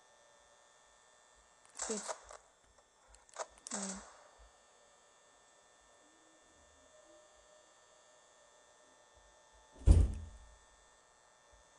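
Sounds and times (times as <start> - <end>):
speech: 1.9 - 2.2, 3.8 - 4.1
door slamming shut in the background: 9.8 - 10.4.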